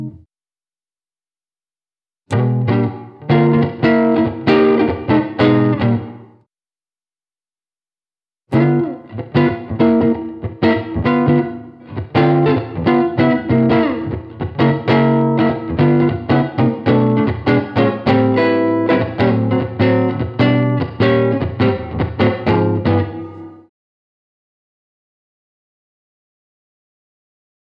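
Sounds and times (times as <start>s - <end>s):
jump blues music: 2.3s - 6.3s, 8.5s - 23.5s.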